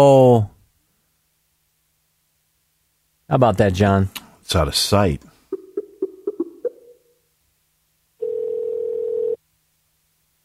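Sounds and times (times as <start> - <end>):
speech: 0.0 - 0.5, 3.3 - 5.3
telephone ringing tone on the line: 8.2 - 9.4.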